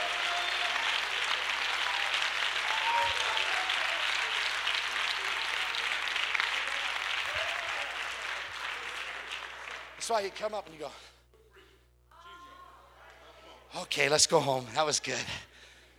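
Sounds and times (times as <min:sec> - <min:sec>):
room full of people clapping: 0:00.0 - 0:10.6
speech: 0:10.1 - 0:11.1, 0:13.8 - 0:15.5.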